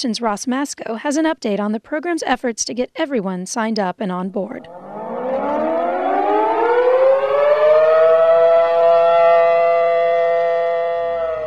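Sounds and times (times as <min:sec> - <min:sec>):
speech: 0:00.0 - 0:04.8
outdoor campus emergency siren test wailing: 0:04.6 - 0:11.4.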